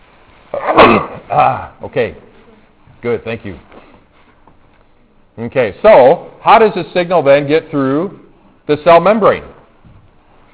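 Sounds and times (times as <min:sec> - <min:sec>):
faint hiss: 0:00.0 - 0:10.5
sneeze during a biology lecture: 0:00.6 - 0:01.7
speech: 0:01.0 - 0:02.3, 0:03.0 - 0:03.8, 0:05.4 - 0:09.6.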